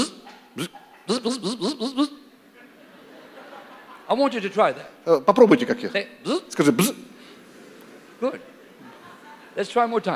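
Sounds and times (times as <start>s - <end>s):
voice imitating an electric bilge pump buzzing: 0.0s - 2.2s
laughter: 0.0s - 4.5s, 7.6s - 9.8s
speech: 0.6s - 2.2s, 4.1s - 7.1s, 8.2s - 8.5s, 9.6s - 10.1s.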